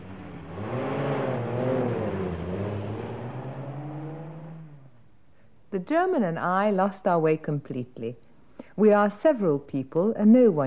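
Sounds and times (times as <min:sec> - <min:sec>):
car engine revving and pulling away: 0:00.0 - 0:05.1
speech: 0:05.7 - 0:08.2, 0:08.8 - 0:10.6.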